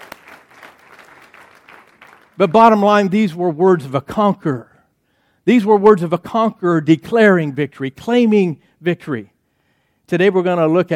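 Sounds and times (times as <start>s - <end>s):
audience applauding: 0.0s - 2.6s
speech: 2.4s - 4.7s, 5.5s - 9.3s, 10.1s - 10.9s.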